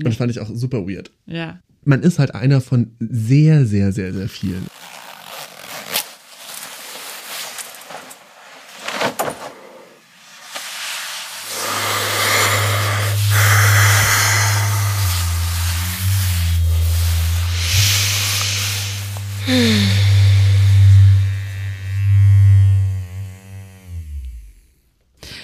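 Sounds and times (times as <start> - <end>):
speech: 0.0 - 5.0
vibrating prostate massager buzzing: 11.4 - 24.7.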